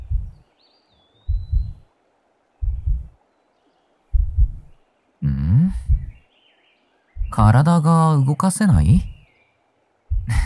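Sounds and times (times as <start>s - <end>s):
slow steady heartbeat: 0.0s - 0.4s, 1.3s - 1.9s, 2.6s - 3.2s, 4.1s - 4.7s, 5.5s - 6.2s, 7.2s - 7.6s, 10.1s - 10.4s
speech: 7.4s - 9.2s.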